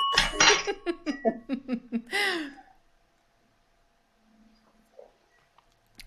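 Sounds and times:
spoon clinking against a champagne glass: 0:00.0 - 0:01.3
laughter: 0:00.2 - 0:02.2.

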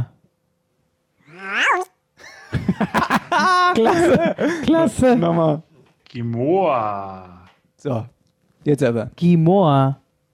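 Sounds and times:
cat meowing: 0:01.3 - 0:01.9
laughter: 0:02.2 - 0:05.2
speech: 0:03.8 - 0:10.0.

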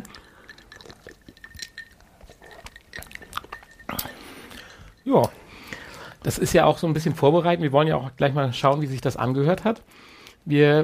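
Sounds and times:
glasses clinking together in a toast: 0:00.0 - 0:05.9
sipping and swallowing of a sweet spritzer: 0:00.0 - 0:05.9
speech: 0:05.1 - 0:05.4, 0:06.2 - 0:10.8.

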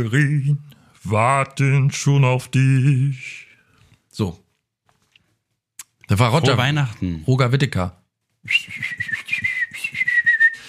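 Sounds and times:
speech: 0:00.0 - 0:03.5, 0:04.2 - 0:04.4, 0:06.1 - 0:09.2
person whistling a smooth sustained melody: 0:08.5 - 0:10.6.

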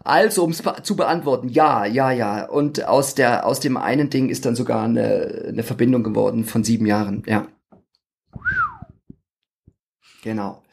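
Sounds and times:
speech: 0:00.1 - 0:07.6, 0:10.2 - 0:10.7
person giving an appreciative whistle: 0:08.4 - 0:09.0.

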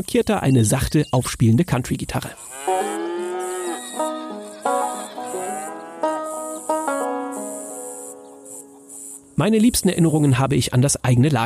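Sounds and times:
speech: 0:00.0 - 0:02.5, 0:09.4 - 0:11.4
crickets chirring: 0:02.2 - 0:11.2
cows mooing on a farm: 0:02.5 - 0:07.6.

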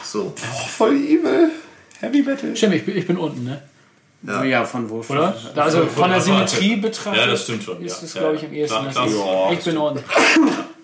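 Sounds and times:
speech: 0:00.1 - 0:10.6
loud sneeze: 0:10.1 - 0:10.8.

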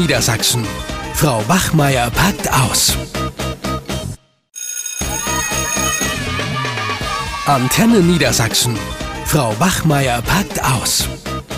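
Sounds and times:
speech: 0:00.0 - 0:03.4, 0:07.5 - 0:11.4
mobile phone ringtone: 0:04.6 - 0:07.3.

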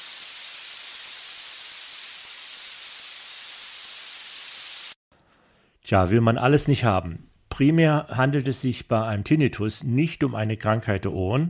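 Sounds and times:
violet noise, thin piercing treble hiss: 0:00.0 - 0:05.0
speech: 0:05.9 - 0:11.4.

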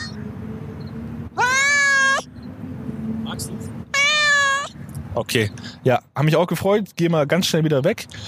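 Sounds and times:
cat meowing loudly in front of the microphone: 0:01.4 - 0:02.3, 0:03.9 - 0:04.8
speech: 0:03.4 - 0:03.8, 0:05.2 - 0:08.2.

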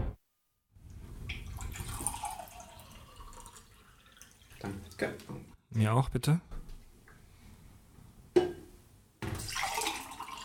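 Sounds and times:
water poured into glasses: 0:01.2 - 0:05.2, 0:09.3 - 0:10.4
speech: 0:05.8 - 0:06.5.

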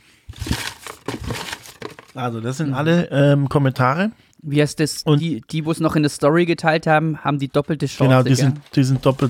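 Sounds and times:
small handwritten paper slips rustling and crinkling: 0:00.3 - 0:02.2, 0:07.9 - 0:09.2
speech: 0:02.2 - 0:09.2.

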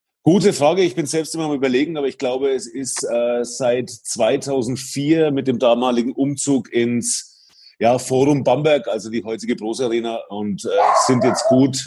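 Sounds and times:
speech: 0:00.2 - 0:11.8
dog barking and yipping: 0:10.8 - 0:11.7.

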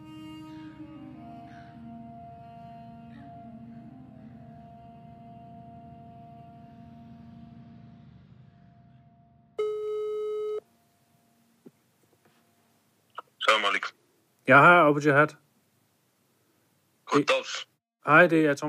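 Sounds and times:
low rumbling drone: 0:01.5 - 0:09.6
telephone ringing tone as a call is placed to Denmark: 0:09.6 - 0:10.7
speech: 0:13.5 - 0:15.4, 0:17.2 - 0:18.6.

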